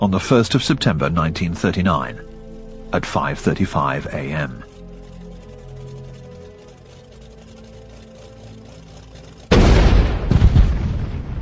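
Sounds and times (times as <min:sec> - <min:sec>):
speech: 0:00.0 - 0:02.3, 0:02.9 - 0:04.7
cannon shot booming: 0:09.5 - 0:11.4.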